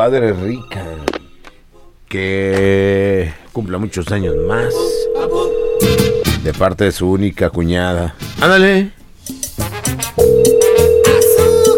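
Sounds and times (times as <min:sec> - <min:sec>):
speech: 0:00.0 - 0:01.2, 0:02.1 - 0:09.0
telephone ringback tone on an outgoing call: 0:04.3 - 0:06.2, 0:10.2 - 0:11.7.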